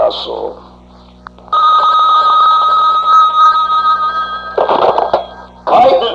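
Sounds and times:
speech: 0.1s - 0.7s
telephone ringing with a loud electronic tone: 1.5s - 6.1s.

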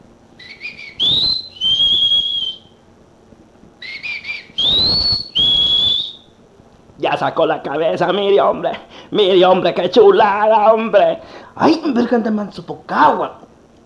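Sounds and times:
person whistling a short two-part tune: 0.4s - 2.7s, 3.8s - 6.2s
speech: 7.0s - 13.8s.

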